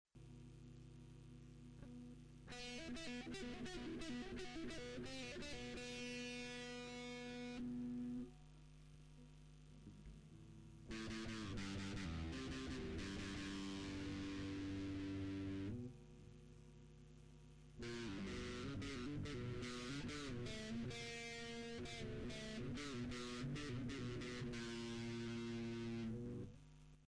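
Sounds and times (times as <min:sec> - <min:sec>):
guitar playing a scale: 0:01.8 - 0:08.4, 0:10.4 - 0:16.0, 0:17.8 - 0:26.5.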